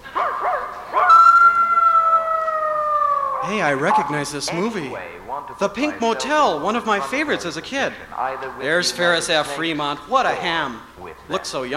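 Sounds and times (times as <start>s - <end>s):
wolf howling: 0.1s - 4.7s
speech: 3.4s - 11.7s.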